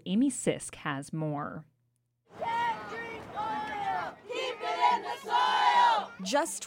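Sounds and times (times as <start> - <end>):
speech: 0.0 - 1.7, 6.2 - 6.6
large crowd shouting and chanting at a protest rally: 2.3 - 6.6.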